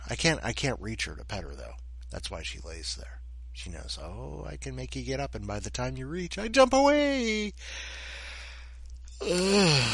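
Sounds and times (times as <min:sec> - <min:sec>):
speech: 0:00.1 - 0:08.2, 0:09.2 - 0:09.9
person yawning while stretching: 0:09.2 - 0:09.9.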